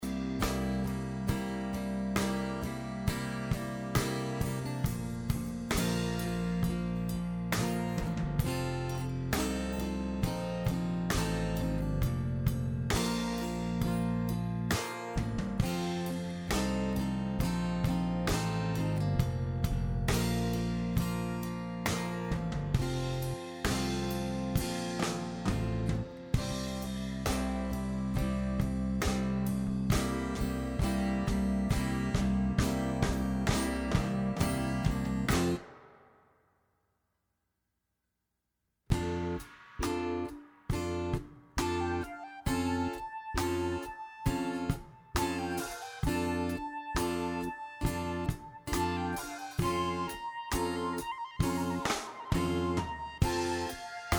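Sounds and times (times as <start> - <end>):
drum: 0.0 - 36.3, 38.9 - 54.1
flute: 41.6 - 54.1.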